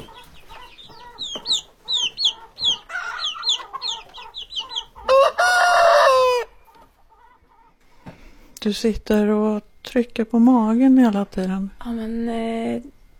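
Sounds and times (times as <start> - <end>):
bird drawn-out crowing squawk: 0.0 - 6.6
chickens clucking: 0.0 - 8.5
speech: 8.7 - 13.1.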